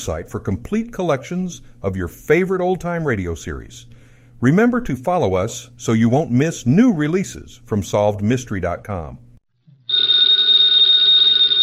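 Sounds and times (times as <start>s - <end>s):
speech: 0.0s - 9.2s
telephone bell ringing: 9.9s - 11.6s.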